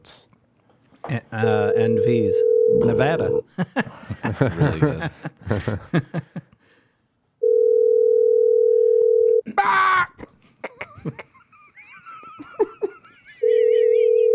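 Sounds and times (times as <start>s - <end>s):
speech: 1.1s - 6.5s
phone line ringing back on an unanswered outgoing call: 1.4s - 3.4s, 7.4s - 9.4s, 13.4s - 14.3s
people laughing: 3.5s - 6.6s, 9.5s - 14.3s
excited shouting: 9.5s - 10.2s.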